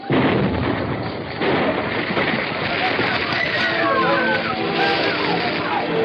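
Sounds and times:
explosion and fire at a munitions factory roaring: 0:00.0 - 0:06.0
indistinct voices: 0:01.8 - 0:06.0.

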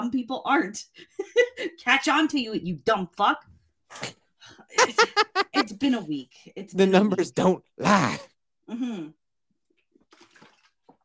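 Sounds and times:
speech: 0:00.0 - 0:09.2
laughter: 0:04.8 - 0:05.8
small gulp: 0:07.8 - 0:08.4
brief rushing slosh of liquid: 0:09.9 - 0:11.0
swig of water being drunk: 0:10.0 - 0:10.9.

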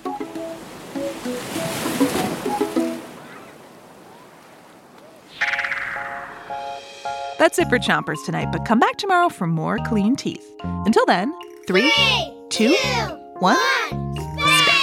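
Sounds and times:
rushing water: 0:00.0 - 0:06.4
ocean surf crashing: 0:00.0 - 0:08.2
speech: 0:07.4 - 0:14.0.

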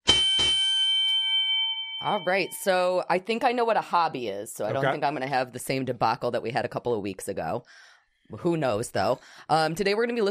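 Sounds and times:
metallic bell strikes: 0:00.0 - 0:03.0
speech: 0:02.0 - 0:10.2.

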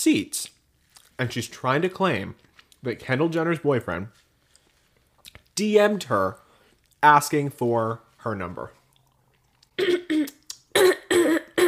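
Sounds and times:
speech: 0:00.0 - 0:00.6, 0:01.2 - 0:04.2, 0:05.6 - 0:06.4, 0:07.0 - 0:08.8
person clearing throat: 0:09.8 - 0:11.6.

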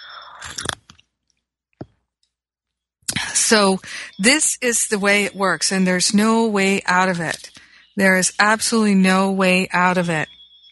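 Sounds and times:
slurping sip of tea: 0:00.3 - 0:01.0
speech: 0:03.5 - 0:10.3.

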